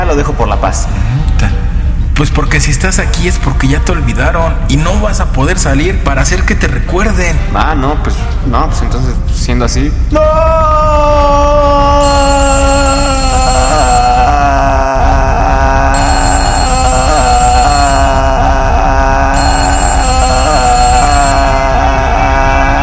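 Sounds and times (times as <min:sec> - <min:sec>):
speech: 0:00.1 - 0:14.6
telephone ringing: 0:12.0 - 0:14.8, 0:15.9 - 0:22.8.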